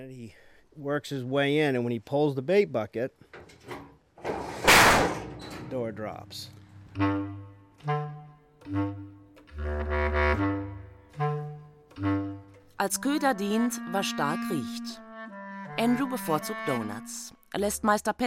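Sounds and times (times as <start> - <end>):
speech: 0.0 - 3.9, 5.7 - 8.0, 8.7 - 10.6, 12.0 - 12.2, 12.8 - 15.0, 15.8 - 18.2
heavy metal culvert trap door sliding down and slamming shut: 3.4 - 6.2.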